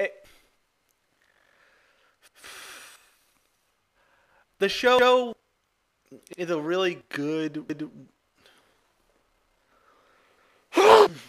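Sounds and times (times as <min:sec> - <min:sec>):
speech: 0:04.6 - 0:05.4, 0:06.1 - 0:08.2
loud sneeze: 0:10.7 - 0:11.2.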